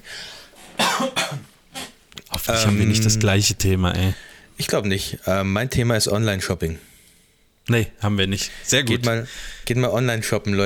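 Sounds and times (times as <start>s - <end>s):
dry coughs: 0.8s - 2.0s
speech: 1.0s - 1.5s, 2.4s - 6.9s, 7.7s - 10.6s.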